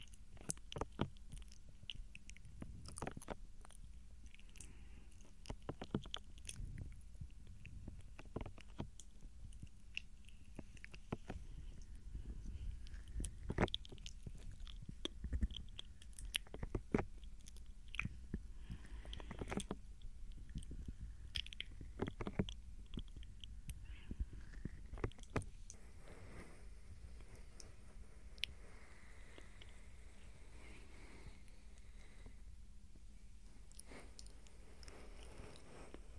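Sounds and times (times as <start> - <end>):
soft wet mouth sounds: 0.0 - 25.8
low steady hum: 0.0 - 36.1.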